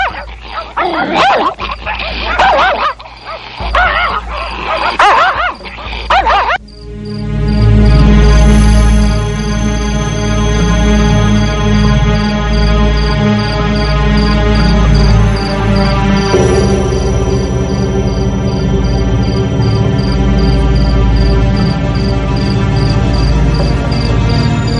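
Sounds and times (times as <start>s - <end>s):
fierce village dog barking at passersby: 0.0s - 6.6s
chorus of chirring crickets and insects: 0.0s - 24.7s.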